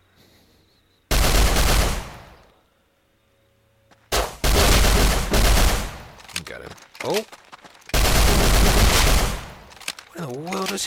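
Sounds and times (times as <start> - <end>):
video game gunfire: 1.1 - 2.3, 4.1 - 10.7
speech: 6.5 - 7.5, 10.2 - 10.8.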